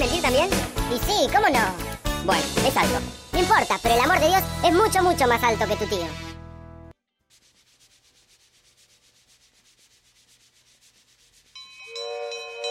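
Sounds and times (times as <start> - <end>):
speech: 0.0 - 6.2
train horn: 11.9 - 12.6.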